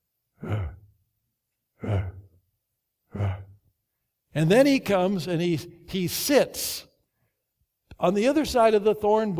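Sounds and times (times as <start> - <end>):
human voice imitating a leopard's heavy breathing: 0.4 - 0.9, 1.8 - 2.4, 3.1 - 3.6
speech: 4.4 - 6.9, 8.0 - 9.3.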